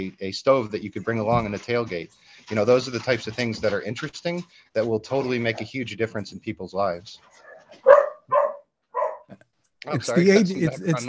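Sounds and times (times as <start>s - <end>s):
speech: 0.0s - 8.0s, 9.3s - 11.0s
dogs barking while running through a house: 7.5s - 9.3s
laughter: 9.9s - 11.0s.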